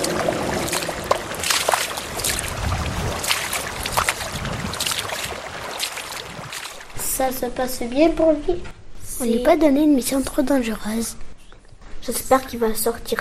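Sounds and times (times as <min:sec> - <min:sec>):
underground stream flowing through a cave: 0:00.0 - 0:07.2
water splashing and gurgling in a cave stream: 0:00.0 - 0:07.2
speech: 0:07.2 - 0:11.3, 0:12.0 - 0:13.1.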